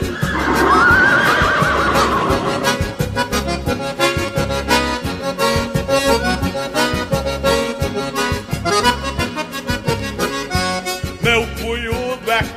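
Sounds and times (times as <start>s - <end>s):
stallion neighing: 0.0s - 3.2s
instrumental music: 0.0s - 12.5s.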